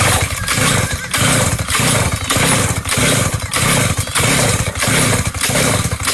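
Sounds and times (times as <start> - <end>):
small chainsaw engine sputtering as it is pull-started: 0.0 - 6.1.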